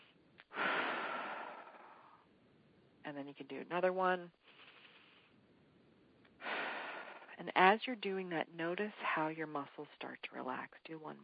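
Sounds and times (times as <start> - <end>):
group of people taking a deep breath: 0.5 - 2.2, 6.4 - 7.3
speech: 3.1 - 4.6, 7.4 - 11.2.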